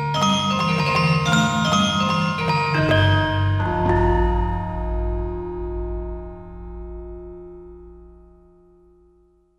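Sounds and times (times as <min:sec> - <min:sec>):
gamelan orchestra hits: 0:00.1 - 0:06.6.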